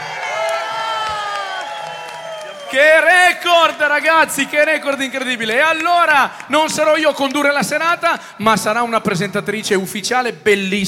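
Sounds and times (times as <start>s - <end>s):
high whoops from the crowd: 0.0s - 3.2s
crowd of 600 people shouting and cheering: 0.0s - 7.8s
speech: 2.7s - 10.8s.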